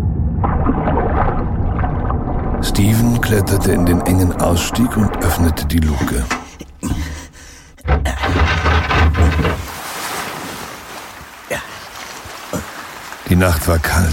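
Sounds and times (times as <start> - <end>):
ocean waves breaking on a cold moonlit night: 0.0 - 7.6, 9.5 - 14.1
deep rumble beneath the water: 0.0 - 9.7
submarine surging up through the water surface, churning gurgling water: 0.0 - 14.1
speech: 2.8 - 6.4, 13.3 - 14.1.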